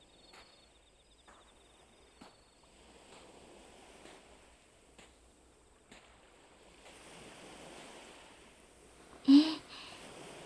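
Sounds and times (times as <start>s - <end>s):
ocean waves washing onto a sandy beach: 2.8s - 10.4s.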